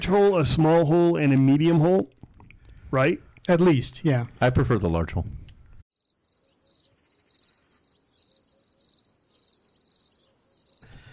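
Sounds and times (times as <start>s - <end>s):
speech: 0.0s - 2.2s, 2.9s - 5.4s
cricket chirping with high shrill trills: 5.9s - 11.1s.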